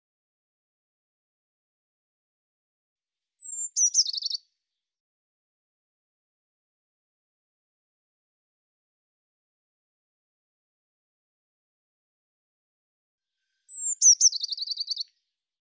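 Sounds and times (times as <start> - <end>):
Eurasian blue tit calling with high descending note and buzzy churr: 3.4 - 4.4, 13.7 - 15.0.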